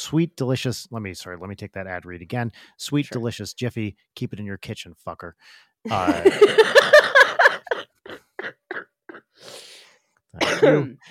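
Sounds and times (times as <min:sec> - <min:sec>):
speech: 0:00.0 - 0:07.4, 0:10.3 - 0:11.0
sick person laughing: 0:05.9 - 0:09.2
hacking cough from illness: 0:06.0 - 0:09.4, 0:10.4 - 0:11.0
raspy breath: 0:09.3 - 0:10.1.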